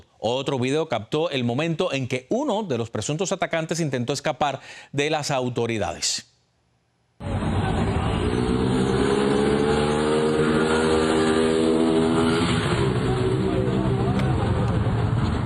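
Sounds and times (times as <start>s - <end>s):
speech: 0.2s - 6.3s
motorcycle engine roaring as a man accelerates away: 7.2s - 15.4s.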